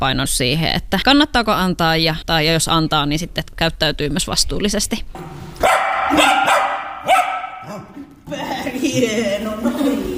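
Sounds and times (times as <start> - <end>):
speech: 0.0 - 10.1
dog barking: 5.6 - 8.0
laughter: 7.7 - 10.1.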